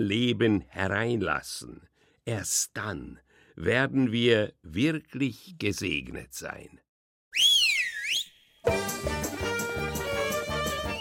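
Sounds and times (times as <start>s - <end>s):
speech: 0.0s - 6.8s, 7.4s - 7.6s
bright swooping radio whistle signal: 7.3s - 8.7s
lively full instrumental tune with steady rhythm: 8.6s - 11.0s.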